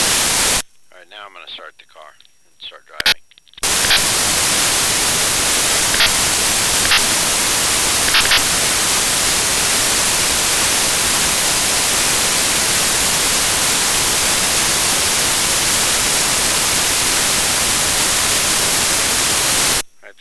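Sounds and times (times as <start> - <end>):
Mazda tire pressure monitoring system warning on car start: 0.0 - 0.6, 3.6 - 19.8.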